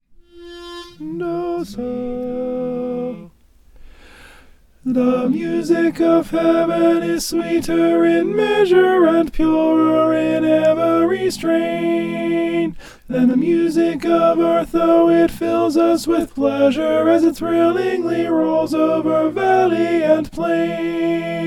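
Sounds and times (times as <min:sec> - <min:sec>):
alto singing: 0:00.1 - 0:03.4, 0:04.8 - 0:21.4.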